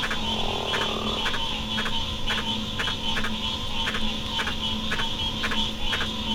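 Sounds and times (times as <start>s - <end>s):
giant green tree frog advertisement call: 0.0s - 1.6s
drone of insects or other frogs: 0.0s - 6.3s.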